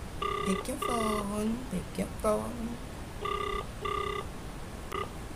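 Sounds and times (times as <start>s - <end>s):
electronic ringback tone of an outgoing phone call: 0.2s - 1.3s, 3.2s - 4.3s, 4.9s - 5.1s
person talking: 0.5s - 2.8s.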